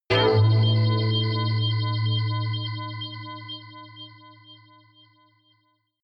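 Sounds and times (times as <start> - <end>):
pulsating synth hit: 0.1 - 4.8.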